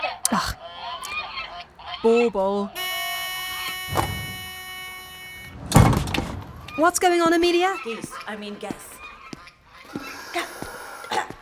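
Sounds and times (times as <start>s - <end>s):
speech: 0.3s - 0.6s, 2.0s - 2.8s, 6.8s - 9.0s
angry geese honking: 2.8s - 7.1s.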